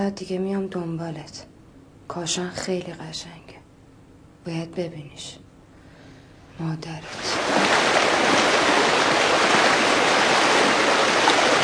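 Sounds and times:
speech: 0.0s - 1.5s, 2.1s - 3.6s, 4.4s - 5.4s, 6.6s - 8.6s
spring water flowing: 7.1s - 11.6s.

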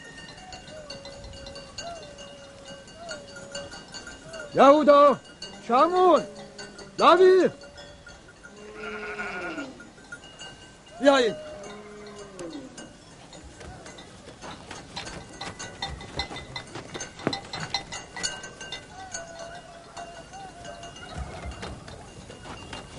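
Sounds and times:
speech: 4.5s - 6.4s, 7.0s - 7.6s, 11.0s - 11.4s
sheep bleating in a farmyard: 8.6s - 9.8s
rattling and knocking in a farmyard: 13.4s - 18.9s.

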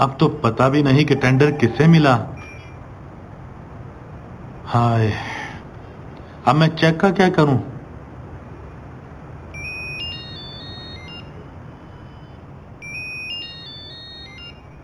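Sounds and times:
speech: 0.0s - 2.4s, 4.7s - 5.3s, 6.4s - 7.7s
telephone ringing with trilling electronic tones: 0.0s - 2.8s, 9.5s - 14.8s
hiss: 0.0s - 14.8s.

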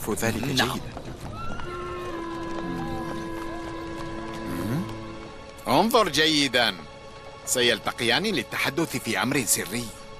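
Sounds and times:
horse hooves clip-clopping: 0.0s - 6.3s
speech: 0.1s - 1.1s, 5.7s - 6.9s, 7.5s - 10.0s.

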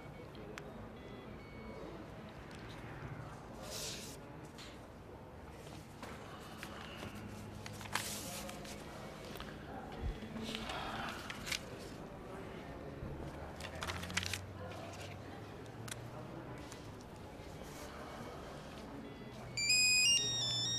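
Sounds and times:
faint voices: 0.0s - 20.7s
noise: 0.0s - 20.7s
telephone ringing with bright repeating electronic tones: 19.5s - 20.7s.

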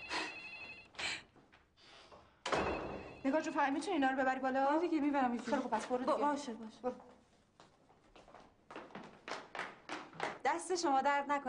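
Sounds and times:
telephone ringing: 0.0s - 0.9s, 2.5s - 3.8s
speech: 3.2s - 7.2s, 10.7s - 11.4s.

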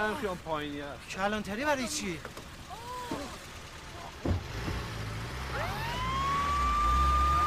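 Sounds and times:
speech: 0.0s - 2.4s
rumble of vehicle engine and traffic: 0.0s - 7.4s
ambulance siren wailing as ambulance drives off: 5.5s - 7.4s.

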